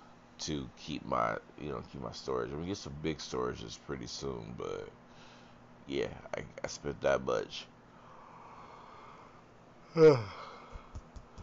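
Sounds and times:
speech: 0:00.4 - 0:05.0, 0:05.9 - 0:07.7, 0:10.0 - 0:10.4
short voiced yawn: 0:09.9 - 0:10.7.

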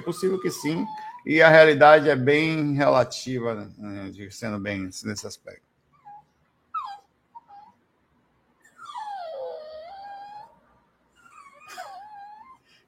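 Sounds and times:
dog whining and crying while being held: 0:00.0 - 0:01.8, 0:05.9 - 0:07.8, 0:08.6 - 0:12.8
speech: 0:00.0 - 0:05.7.

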